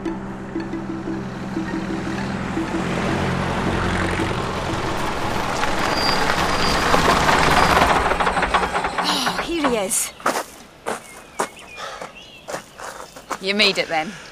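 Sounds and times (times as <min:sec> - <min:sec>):
lorry engine droning: 0:00.0 - 0:10.0
speech: 0:13.5 - 0:14.3.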